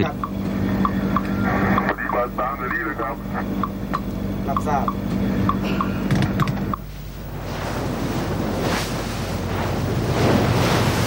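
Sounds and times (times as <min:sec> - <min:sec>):
speech: 0:00.0 - 0:00.3, 0:02.2 - 0:05.8
fishing boat engine humming on open sea: 0:00.0 - 0:11.0
rushing wash of sea and wind: 0:06.4 - 0:11.0.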